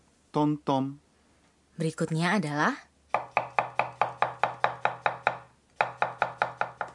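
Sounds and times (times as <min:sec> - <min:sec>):
speech: 0:00.4 - 0:01.0, 0:01.8 - 0:02.9
knife chopping on a cutting board: 0:03.1 - 0:06.9.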